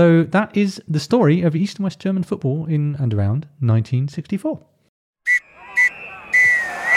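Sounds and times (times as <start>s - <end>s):
speech: 0.0s - 4.7s
referee's whistle blowing the full-time pattern to end the match: 5.3s - 6.9s.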